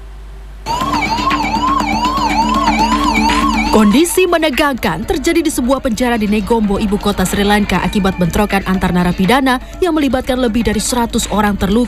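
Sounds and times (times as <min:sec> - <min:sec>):
ambulance siren wailing at a prison in Negombo, Sri Lanka: 0:00.7 - 0:04.5
speech: 0:03.7 - 0:11.8.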